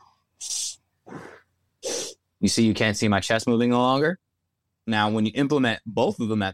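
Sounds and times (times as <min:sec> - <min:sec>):
deep belly breath inhale through the gut: 0:01.1 - 0:02.2
speech: 0:02.4 - 0:06.5.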